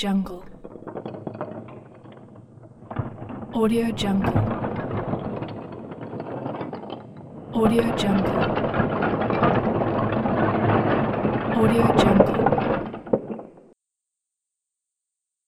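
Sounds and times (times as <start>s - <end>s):
building wall collapsing: 0.1s - 13.8s
debris falling: 0.3s - 13.8s.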